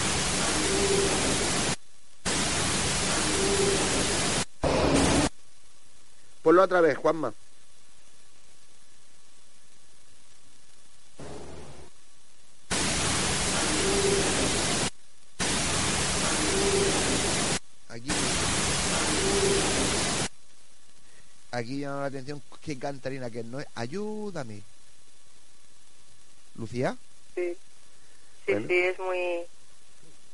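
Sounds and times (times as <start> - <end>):
loud broadband static hiss from an EVP psychophony recording: 0.0 - 30.3
speech: 6.5 - 7.4, 21.7 - 24.8, 26.6 - 27.7, 28.5 - 29.6.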